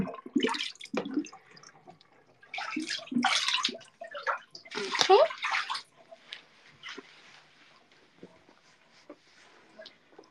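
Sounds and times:
bathtub drain gurgling and slurping: 0.0 - 6.2
bathtub water draining: 0.0 - 7.4.

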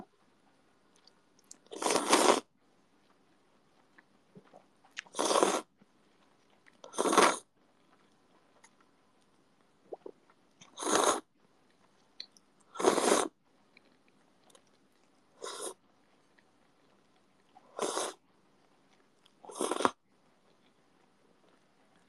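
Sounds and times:
slurping ramen noodles late at night: 1.7 - 2.5, 5.1 - 5.7, 6.9 - 7.5, 10.7 - 11.3, 12.8 - 13.3, 17.7 - 18.2, 19.5 - 20.0.

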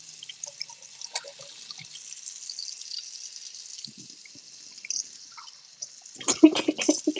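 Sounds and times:
water drips: 0.0 - 7.1.

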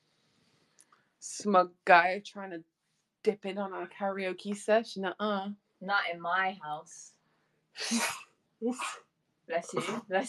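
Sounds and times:
speech: 1.3 - 7.2, 7.8 - 10.2
person sneezing: 7.8 - 9.0, 9.8 - 10.1.

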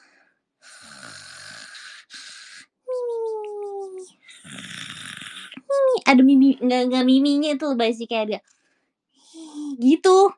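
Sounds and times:
person imitating snoring: 0.6 - 2.7, 3.8 - 5.7
speech: 6.1 - 8.5, 9.8 - 10.3.

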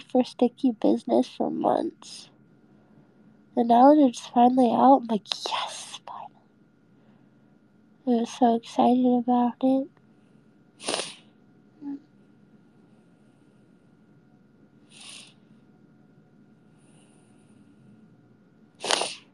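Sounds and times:
faint steady hum: 0.0 - 19.3
speech: 0.1 - 2.3, 3.6 - 6.2, 8.0 - 10.0
person sniffling: 10.8 - 11.2, 18.8 - 19.3.

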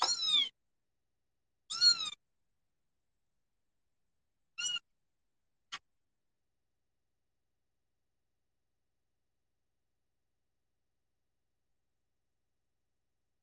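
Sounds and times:
kitten meowing: 0.0 - 0.5, 1.7 - 2.2, 4.6 - 4.8.

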